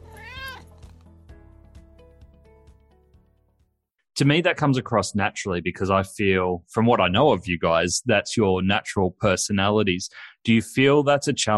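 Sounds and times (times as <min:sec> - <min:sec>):
cat meowing: 0:00.0 - 0:00.8
speech: 0:04.2 - 0:11.5.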